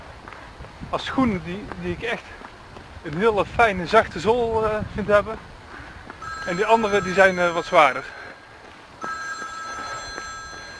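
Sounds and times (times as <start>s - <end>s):
speech: 0.9s - 2.4s, 3.0s - 5.5s, 6.4s - 8.2s
telephone ringing with a steady high electronic tone: 6.2s - 10.7s.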